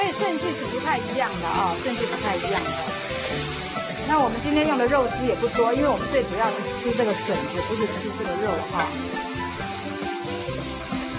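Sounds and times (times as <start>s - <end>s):
bamboo shoots with pork sizzling in a hot wok: 0.0s - 11.1s
speech: 0.2s - 9.2s
scraping and tossing while stir-frying bamboo shoots with pork in a wok: 1.5s - 4.2s, 7.0s - 11.1s.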